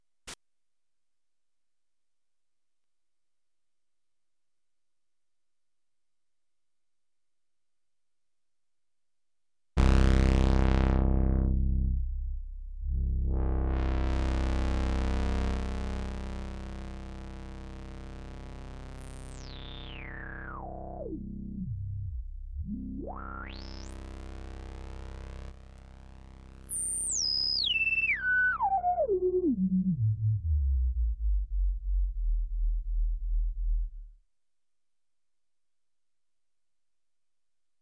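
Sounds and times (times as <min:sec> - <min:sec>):
resonant lowpass synth sound on a Kawai SX240: 0:09.8 - 0:16.4, 0:19.3 - 0:34.2.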